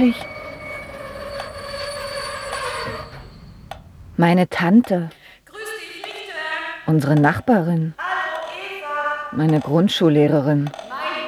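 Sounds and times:
speech: 0.0 - 0.3, 4.2 - 5.2, 6.9 - 8.0, 9.3 - 10.8
train pulling into a station platform: 0.0 - 4.5.

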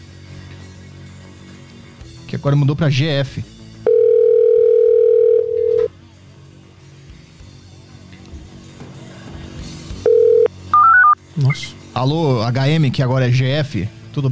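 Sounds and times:
speech: 2.3 - 3.6, 11.4 - 14.3
telephone dial tone: 3.9 - 5.9, 10.1 - 11.2
telephone keypad beeps of a call being dialed: 10.8 - 11.6.

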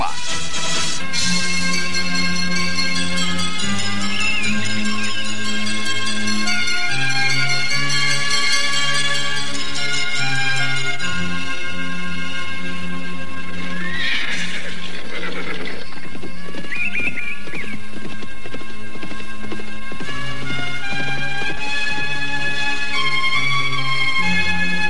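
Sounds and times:
horses galloping through a city gate: 0.2 - 24.8
horses whinnying: 13.6 - 18.7.

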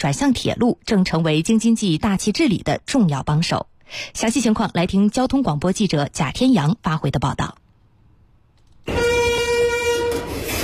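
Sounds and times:
speech: 0.0 - 7.6, 8.8 - 9.1
heavy freight train horn pulling out of station: 8.9 - 10.6.

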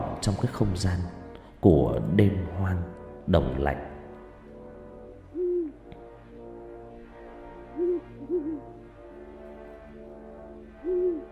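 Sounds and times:
speech: 0.2 - 3.9
owls hooting at night over a cold wild field: 5.3 - 5.9, 7.6 - 9.0, 10.8 - 11.3.

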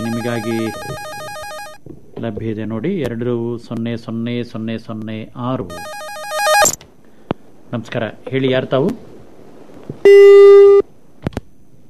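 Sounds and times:
telephone busy signal beep on a failed call: 0.0 - 1.8, 5.7 - 6.8, 10.1 - 10.8
speech: 0.2 - 1.1, 2.2 - 6.0, 7.7 - 9.1, 10.0 - 10.6.

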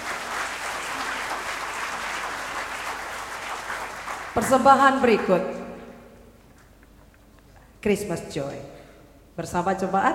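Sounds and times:
church congregation applauding at a Christmas service: 0.0 - 5.3
speech: 4.4 - 5.6, 7.8 - 8.8, 9.4 - 10.1.

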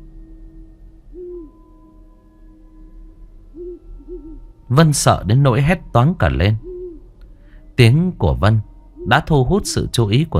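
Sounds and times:
owl hooting in a forest of the Central Highlands: 1.1 - 2.0, 3.5 - 4.5, 6.4 - 7.2, 8.8 - 10.1
speech: 4.7 - 6.7, 7.8 - 10.3.

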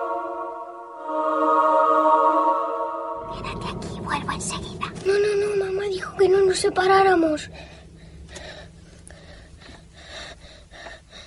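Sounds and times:
steady low hum: 0.0 - 11.2
speech: 6.0 - 7.8
person breathing heavily with rough gasps: 7.4 - 11.2.

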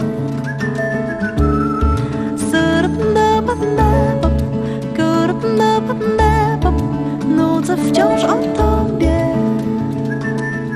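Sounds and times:
musical backing with steady bass and rhythm: 0.0 - 10.7
person whistling a tune: 0.4 - 2.4, 10.1 - 10.7.

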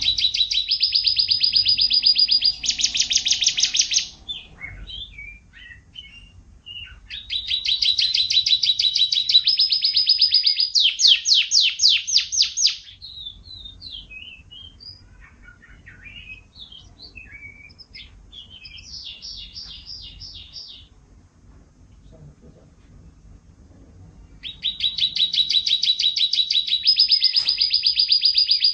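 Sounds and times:
low rumbling noise: 0.0 - 8.8, 12.9 - 25.6
bird song with high whistled and chirping phrases and rapid trill: 0.0 - 21.0, 24.2 - 28.7.

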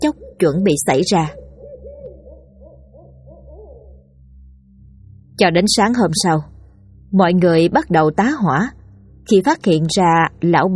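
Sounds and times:
speech: 0.0 - 1.5, 5.4 - 10.7
barn owl screeching in a banyan tree: 0.0 - 4.1.

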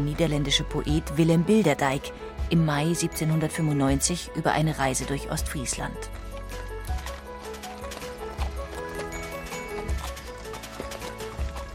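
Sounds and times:
speech: 0.0 - 6.2
hooves of horses pulling a post coach at a fast downhill trot: 5.4 - 11.7.

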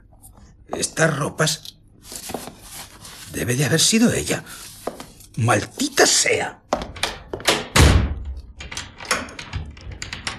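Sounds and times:
speech: 0.7 - 1.7, 3.4 - 4.7, 5.4 - 6.7
door shutting with a heavy thud: 6.8 - 10.3.

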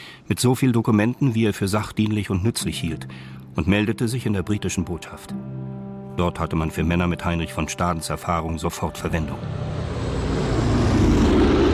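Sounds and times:
speech: 0.3 - 5.5, 6.2 - 9.9
DC-4 propeller airliner landing at Rhein-Main airport: 8.9 - 11.7.

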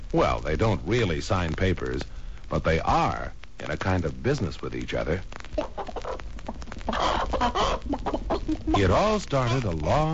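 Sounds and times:
speech: 0.1 - 5.8, 6.9 - 10.1
chicken clucking: 5.6 - 9.8.

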